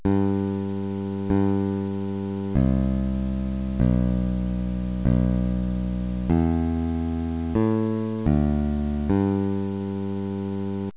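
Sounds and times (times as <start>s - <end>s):
bass: 0.0s - 10.9s.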